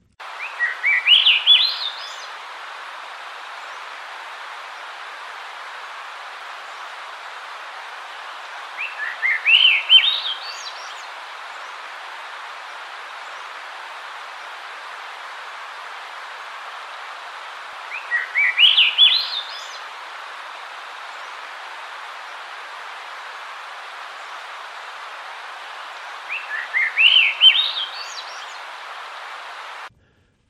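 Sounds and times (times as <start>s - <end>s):
steady hiss: 0.0s - 30.4s
Swainson's thrush singing flute-like spiraling phrases: 0.2s - 29.9s.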